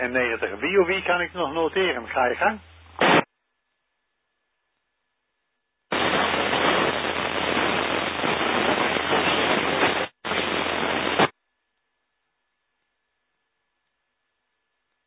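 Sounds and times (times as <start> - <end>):
speech: 0.0 - 3.1
radio static hiss during an amateur radio net check-in: 0.0 - 3.3, 5.9 - 11.3.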